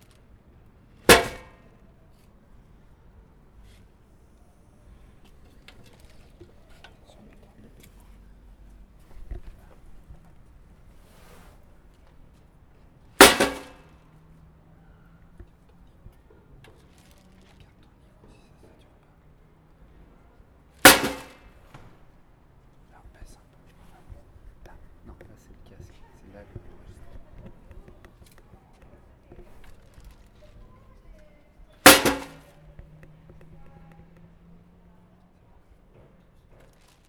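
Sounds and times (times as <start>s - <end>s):
faint scattered clicks: 0.0s - 35.4s
trash bin lid slamming shut: 1.1s - 1.6s, 20.9s - 21.4s, 31.9s - 32.5s.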